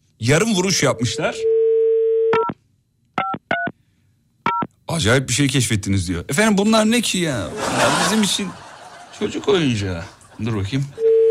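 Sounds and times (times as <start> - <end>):
speech: 0.2 - 1.6, 5.0 - 11.0
telephone dial tone: 1.4 - 2.5, 11.0 - 11.2
dual-pitched touch-tone keypad beeps: 2.3 - 2.6, 3.2 - 3.7, 4.4 - 4.7
laughter: 7.4 - 11.0.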